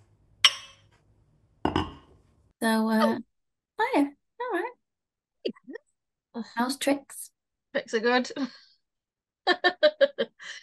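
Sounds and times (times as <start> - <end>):
mugs clinking together in a toast: 0.4 - 0.9, 1.7 - 2.1
speech: 2.6 - 3.3, 6.4 - 8.7, 9.5 - 10.6.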